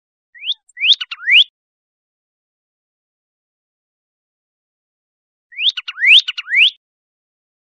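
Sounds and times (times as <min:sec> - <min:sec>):
pyrrhuloxia singing whistled slurs: 0:00.4 - 0:01.5, 0:05.5 - 0:06.8.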